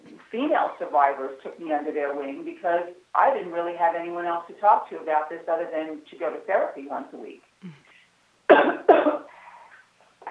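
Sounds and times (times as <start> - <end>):
speech: 0.3 - 7.8
rough throat-clearing rasp: 7.6 - 7.9
harsh coughs: 8.5 - 9.4.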